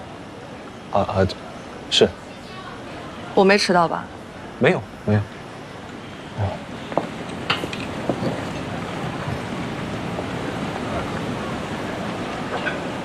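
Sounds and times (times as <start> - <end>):
chatter in a busy hot pot restaurant: 0.0 - 13.0
speech: 0.9 - 2.2, 3.4 - 5.4
sharp clinks of dishes and cutlery: 7.5 - 8.7.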